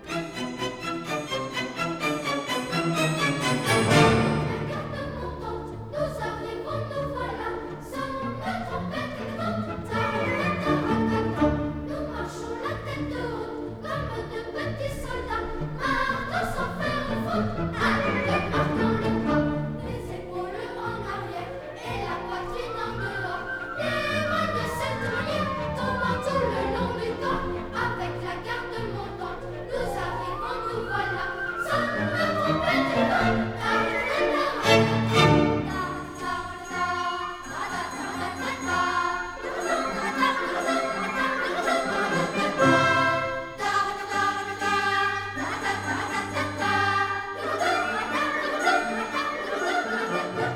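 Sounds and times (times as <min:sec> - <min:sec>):
instruments playing: 0:00.0 - 0:05.9, 0:17.3 - 0:50.5
voices singing: 0:00.0 - 0:50.5.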